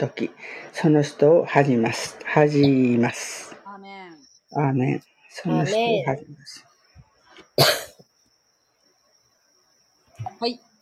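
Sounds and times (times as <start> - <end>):
speech: 0.0 - 3.5, 4.5 - 6.7, 7.6 - 7.8, 10.2 - 10.7
faint breath: 0.4 - 0.8
person coughing: 7.6 - 8.0.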